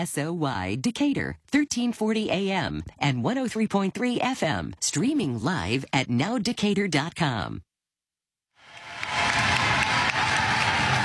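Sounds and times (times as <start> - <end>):
speech: 0.0 - 7.7
large indoor crowd cheering and applauding at a volleyball match: 8.6 - 11.0.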